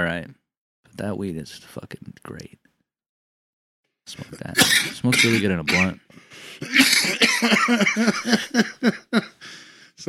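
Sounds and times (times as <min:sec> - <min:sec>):
speech: 0:00.0 - 0:00.4, 0:01.0 - 0:02.6, 0:04.1 - 0:10.0
person coughing away from the mic: 0:04.4 - 0:06.0, 0:06.6 - 0:08.4
laughter: 0:06.7 - 0:09.6.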